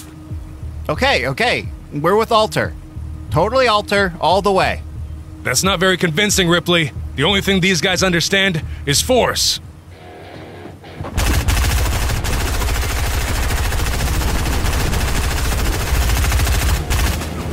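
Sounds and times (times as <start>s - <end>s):
speech: 0.9s - 9.7s
rapid automatic gunfire from a gun: 11.2s - 17.3s.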